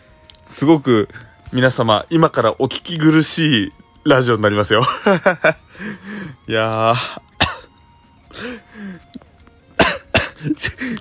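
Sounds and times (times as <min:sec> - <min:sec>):
speech: 0:00.6 - 0:07.3, 0:10.4 - 0:10.9
laughter: 0:04.8 - 0:05.6
harsh coughing fit: 0:07.4 - 0:07.8, 0:09.8 - 0:10.9.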